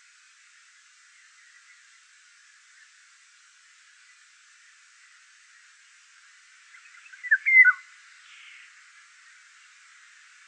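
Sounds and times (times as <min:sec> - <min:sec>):
Eurasian golden oriole singing a mellow fluty whistled phrase: 0:07.2 - 0:07.8.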